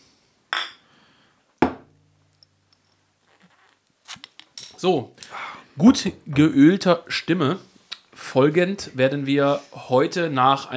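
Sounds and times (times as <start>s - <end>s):
glasses clinking in a toast: 0.5s - 5.8s
soft rustling: 1.1s - 10.1s
small clatters: 2.2s - 5.4s
speech: 4.8s - 5.2s, 5.8s - 10.7s.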